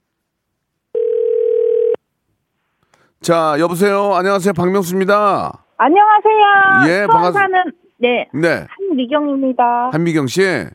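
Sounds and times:
telephone tone as a call is placed: 0.9s - 2.0s
speech: 3.2s - 10.7s.

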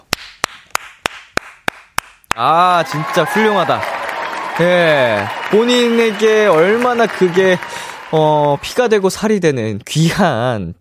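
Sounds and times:
sharp crisp hand claps: 0.0s - 8.6s
speech: 2.4s - 4.0s, 4.6s - 10.8s.

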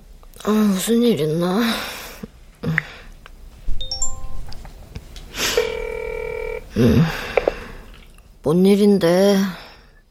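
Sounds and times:
speech: 0.4s - 2.0s, 6.8s - 7.3s, 8.5s - 9.6s
electronic telephone beeps: 5.6s - 6.6s.

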